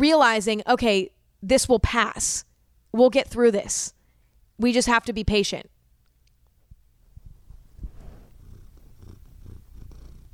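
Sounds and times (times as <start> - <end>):
speech: 0.0 - 4.0, 4.6 - 5.7
cat purring: 7.1 - 10.3.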